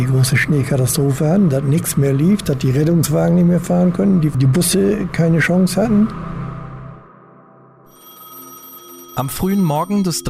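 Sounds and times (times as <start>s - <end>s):
speech: 0.0s - 6.3s, 9.2s - 10.2s
telephone bell ringing in a warm living room: 7.9s - 10.2s.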